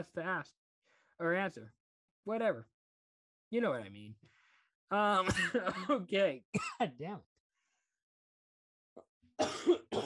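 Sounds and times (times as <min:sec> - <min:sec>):
speech: 0:00.0 - 0:00.6, 0:01.2 - 0:02.7, 0:03.5 - 0:07.3
man coughing into microphone: 0:05.2 - 0:06.0, 0:06.6 - 0:06.9, 0:09.4 - 0:10.0.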